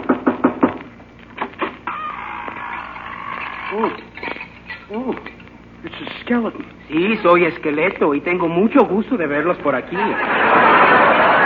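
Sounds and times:
knocking on a door: 0:00.0 - 0:00.8
creaky wavering call: 0:01.8 - 0:05.3
speech: 0:03.8 - 0:04.1, 0:06.3 - 0:10.8
laughter: 0:09.8 - 0:11.4.

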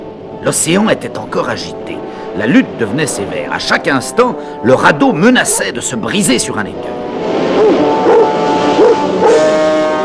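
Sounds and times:
constant rushing wash of noise: 0:00.0 - 0:10.0
speech: 0:00.4 - 0:07.2
dogs barking and yelping while swimming: 0:07.5 - 0:09.5.

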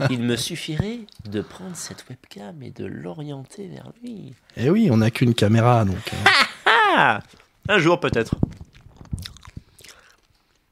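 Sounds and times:
speech: 0:00.0 - 0:08.6
laughter: 0:06.0 - 0:07.2
person chewing and biting crunchy food: 0:08.4 - 0:10.7.

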